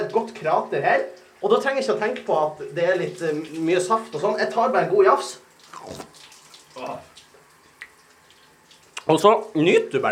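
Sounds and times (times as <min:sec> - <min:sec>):
shower water running and splashing over a person: 0:00.0 - 0:10.1
speech: 0:00.2 - 0:06.2, 0:06.8 - 0:07.1, 0:09.0 - 0:10.1.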